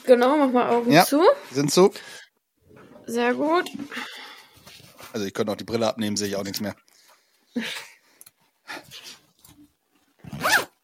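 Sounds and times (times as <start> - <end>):
speech: 0.1 - 2.2, 3.1 - 4.2, 5.1 - 6.9, 7.6 - 7.9
zipper pulled in short raspy strokes: 10.2 - 10.8.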